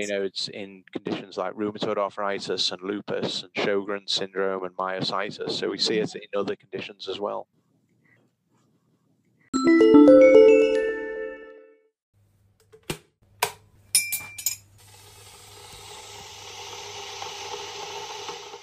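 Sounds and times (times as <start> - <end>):
speech: 0.0 - 7.6, 9.6 - 10.4
spoon striking a teacup during a tea break: 13.9 - 14.6
china clinking: 13.9 - 14.7.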